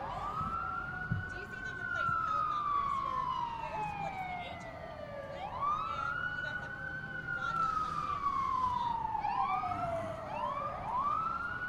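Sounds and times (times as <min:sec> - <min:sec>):
fire department truck siren wailing: 0:00.0 - 0:11.6
road noise rumble: 0:00.0 - 0:11.6.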